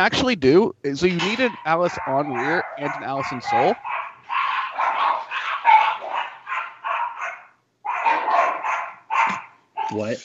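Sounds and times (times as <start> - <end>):
speech: 0.0 - 3.9, 9.9 - 10.2
small pet dogs barking in high-pitched bursts: 1.1 - 10.1.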